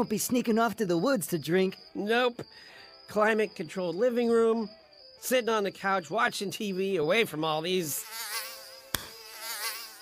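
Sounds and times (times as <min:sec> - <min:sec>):
speech: 0:00.0 - 0:08.4
mosquito whining: 0:01.5 - 0:05.5, 0:07.6 - 0:10.0
sharp slap-like click: 0:08.9 - 0:09.2.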